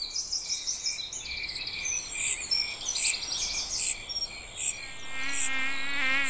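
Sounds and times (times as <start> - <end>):
insects humming outdoors in nature: 1.3 - 6.2
fluttering buzz: 4.7 - 6.2.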